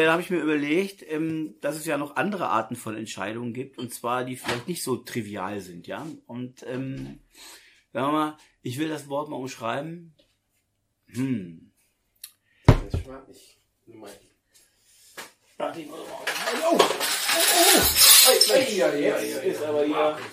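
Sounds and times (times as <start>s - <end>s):
speech: 0.0s - 10.2s, 11.1s - 11.7s, 13.1s - 14.3s, 15.6s - 20.3s
person murmuring: 11.1s - 11.7s
many metal crown bottle caps rattling and falling from a container: 16.0s - 18.8s
metal crown bottle caps clinking: 16.2s - 18.9s.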